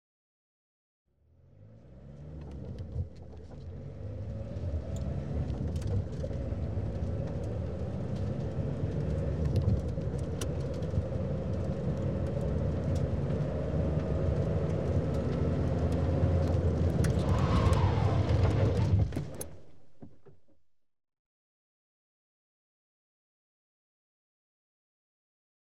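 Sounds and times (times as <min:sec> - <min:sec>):
car running and skidding to a stop: 0:01.4 - 0:20.6.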